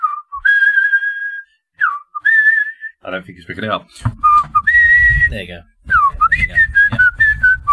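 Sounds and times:
man whistling a bright wavering tune: 0.0 - 3.0, 4.2 - 7.7
speech: 3.1 - 4.6, 5.2 - 5.7.

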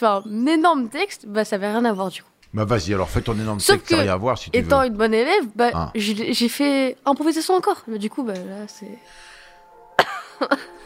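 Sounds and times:
speech: 0.0 - 9.3, 10.0 - 10.8
person coughing sharply: 10.0 - 10.7.

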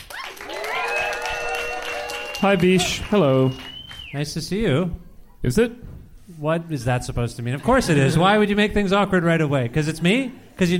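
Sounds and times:
loud cheers and whoops: 0.0 - 3.7
live audience applauding: 0.0 - 4.2
speech: 2.4 - 10.7.

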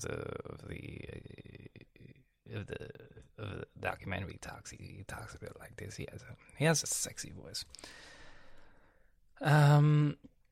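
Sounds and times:
speech: 0.0 - 1.2, 2.5 - 2.9, 4.0 - 8.2, 9.4 - 10.3
heavy breathing right up against the microphone: 7.7 - 9.2
brief voiced hum-like sigh: 7.7 - 10.3.

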